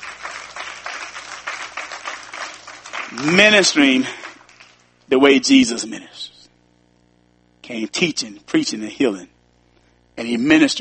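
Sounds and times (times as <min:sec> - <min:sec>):
church congregation clapping hands in praise during a morning service: 0:00.0 - 0:04.9
speech: 0:03.1 - 0:04.2, 0:05.1 - 0:06.3, 0:07.7 - 0:09.4, 0:10.2 - 0:10.7.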